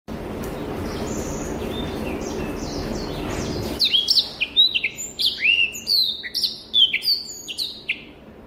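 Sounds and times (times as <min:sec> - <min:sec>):
steady rushing noise: 0:00.1 - 0:06.0.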